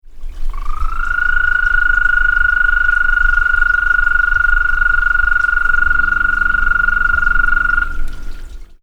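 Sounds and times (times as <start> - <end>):
Bufo americanus calling: 0.4 - 8.5.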